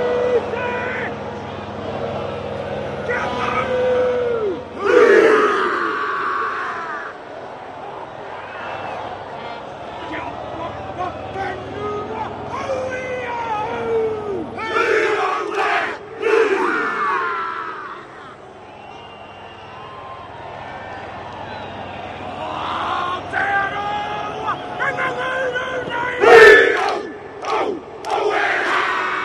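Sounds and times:
collective yell of rugby players: 0:00.0 - 0:01.2, 0:03.0 - 0:18.4, 0:21.7 - 0:29.2
stadium crowd murmuring: 0:00.0 - 0:29.2
rugby players performing haka war chant: 0:03.0 - 0:07.3, 0:09.4 - 0:18.4, 0:22.3 - 0:29.2.

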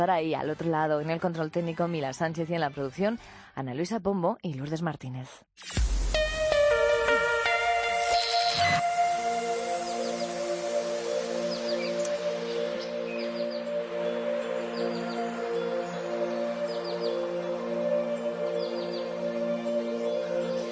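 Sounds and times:
speech: 0:00.0 - 0:05.9
soft sustained musical jingle introducing a radio weather forecast: 0:05.8 - 0:20.7
birds chirping and tweeting: 0:09.9 - 0:20.7.

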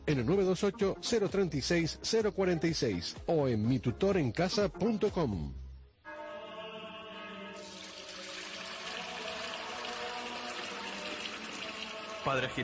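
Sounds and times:
speech: 0:00.1 - 0:05.6, 0:12.2 - 0:12.6
spring water pouring into a container: 0:07.6 - 0:12.6.

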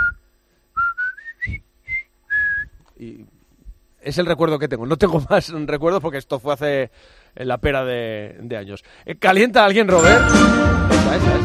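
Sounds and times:
person whistling a short bright tune: 0:00.0 - 0:02.8
speech: 0:03.0 - 0:03.4, 0:04.0 - 0:11.4.

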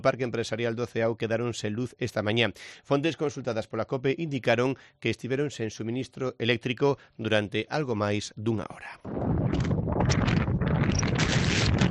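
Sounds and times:
speech: 0:00.0 - 0:11.0
strong wind buffeting a microphone on the coast: 0:09.0 - 0:11.8.

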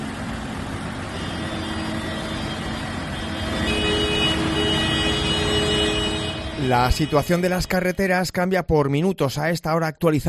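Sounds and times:
heavy tractor engines rumbling: 0:00.0 - 0:08.1
tractor horns blaring during a farmers' tractor protest in La Rioja Spain: 0:01.0 - 0:08.2
speech: 0:06.7 - 0:10.2.

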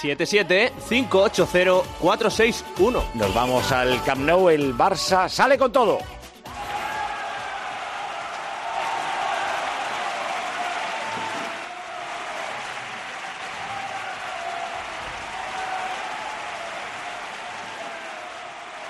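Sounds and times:
speech: 0:00.0 - 0:06.2
large crowd applauding: 0:06.5 - 0:18.8.

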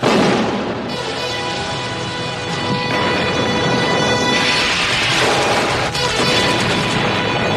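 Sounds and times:
gunfire from an action movie trailer: 0:00.0 - 0:01.1, 0:03.0 - 0:07.5
explosions from an action movie trailer: 0:00.0 - 0:01.2, 0:02.7 - 0:07.5
steady tonal layer: 0:00.0 - 0:07.5.

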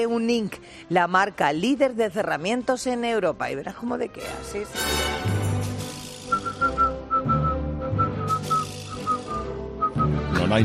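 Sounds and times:
speech: 0:00.0 - 0:05.2, 0:10.5 - 0:10.6
person whistling a lilting tune: 0:06.2 - 0:10.2.

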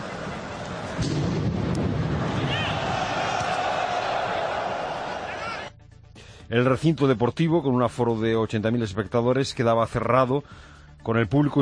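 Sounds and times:
football stadium crowd cheering and chanting at a friendly match: 0:00.0 - 0:05.7
speech: 0:01.0 - 0:01.4, 0:06.5 - 0:11.6
bomb explosion beside a football stadium: 0:01.0 - 0:03.1.

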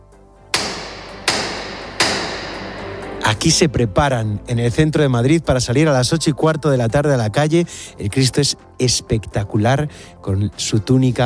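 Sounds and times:
procession float hammer knocks with decay: 0:00.6 - 0:03.2
speech: 0:03.4 - 0:11.2.

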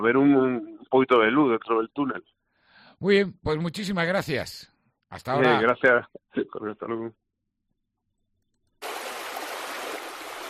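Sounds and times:
speech: 0:00.0 - 0:02.4, 0:03.0 - 0:07.2
flowing water: 0:08.8 - 0:10.4.

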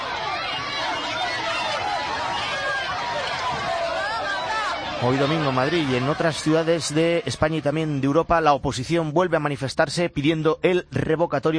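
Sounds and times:
crowd of many overlapping shouting voices: 0:00.0 - 0:09.0
speech: 0:05.0 - 0:11.5.

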